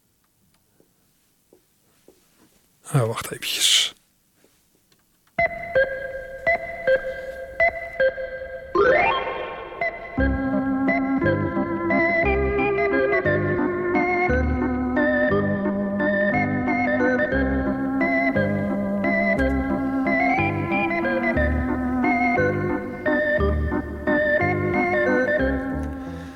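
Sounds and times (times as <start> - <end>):
speech: 2.9 - 3.9
electric organ playing a bouncy waltz: 5.4 - 26.3.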